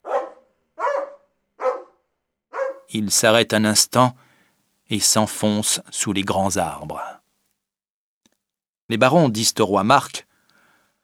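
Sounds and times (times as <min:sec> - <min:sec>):
dog with an injured paw barking: 0:00.0 - 0:02.9
speech: 0:02.9 - 0:04.3, 0:04.9 - 0:07.2, 0:08.9 - 0:10.3.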